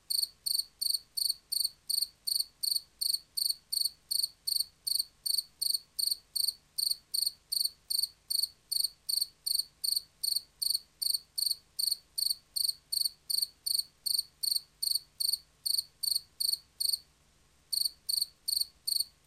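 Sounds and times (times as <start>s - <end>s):
field cricket singing a rhythmic chirp series: 0.1s - 17.0s, 17.7s - 19.2s.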